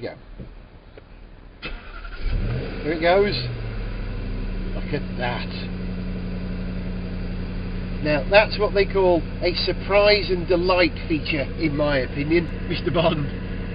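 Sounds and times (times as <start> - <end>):
speech: 0.0 - 0.5, 2.8 - 3.6, 4.9 - 5.7, 8.0 - 13.4
Jaguar XFR car engine cranking, firing up and idling: 0.4 - 13.7.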